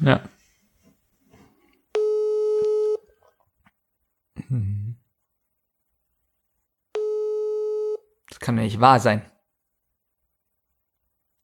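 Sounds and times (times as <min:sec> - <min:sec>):
speech: 0:00.0 - 0:00.3, 0:08.5 - 0:09.3
telephone busy tone after a rejected call: 0:01.9 - 0:03.1, 0:07.0 - 0:08.0
low voice murmur: 0:04.4 - 0:05.0.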